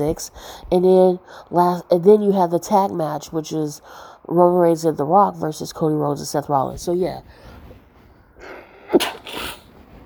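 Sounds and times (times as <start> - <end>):
speech: 0.0 - 7.5, 8.4 - 9.4
person sneezing: 8.8 - 9.7.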